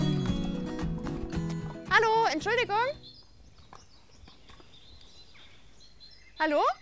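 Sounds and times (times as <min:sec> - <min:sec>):
horses' hooves clip-clopping walking along a trail: 0:00.0 - 0:04.8
speech: 0:02.0 - 0:03.1, 0:06.4 - 0:06.8.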